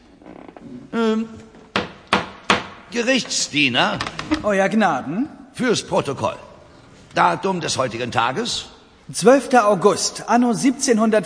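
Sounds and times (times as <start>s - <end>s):
speech: 0.6s - 1.5s, 2.9s - 6.5s, 7.1s - 11.2s
small judge's gavel knocks in a courtroom: 1.7s - 3.4s.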